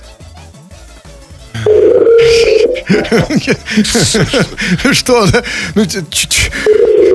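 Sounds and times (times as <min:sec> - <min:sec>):
telephone ringback beeps through the earpiece: 0:01.6 - 0:02.8, 0:06.6 - 0:07.1
laughter: 0:02.2 - 0:06.2
speech: 0:02.8 - 0:07.1.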